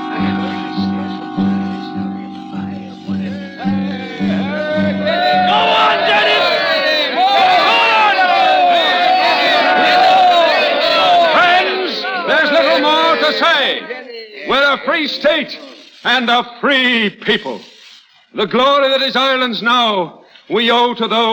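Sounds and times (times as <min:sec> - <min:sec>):
large crowd cheering at an outdoor meeting in a square: 0:00.0 - 0:13.8
rhythmic crowd shouts: 0:03.1 - 0:13.8
speech: 0:14.8 - 0:17.7, 0:18.3 - 0:21.3.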